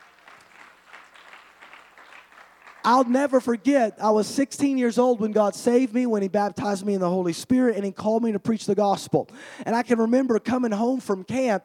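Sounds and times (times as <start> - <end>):
audience applause with dense hand clapping: 0.0 - 3.4
speech: 2.8 - 11.6.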